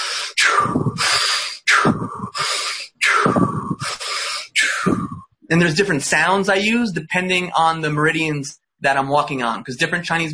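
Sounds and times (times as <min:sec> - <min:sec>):
slow deep breaths through the nose or mouth for pain relief: 0:00.0 - 0:05.4
speech: 0:05.5 - 0:10.3.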